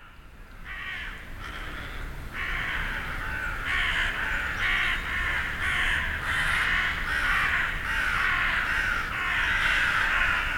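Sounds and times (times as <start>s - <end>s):
ravens cawing in raspy bursts in Hütteldorf: 0.0s - 10.5s.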